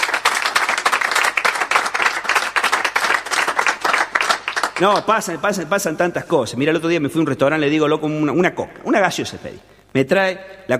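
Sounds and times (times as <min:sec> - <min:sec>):
audience applause: 0:00.0 - 0:05.3
speech: 0:04.8 - 0:10.7.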